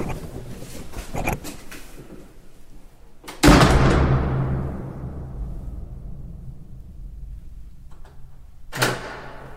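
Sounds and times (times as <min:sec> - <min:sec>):
loud slam echoing through a long bunker tunnel: 0:03.4 - 0:09.5
thud: 0:03.4 - 0:09.5.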